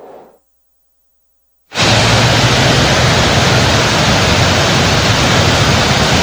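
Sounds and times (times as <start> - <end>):
heavy rain downpour: 1.8 - 6.2.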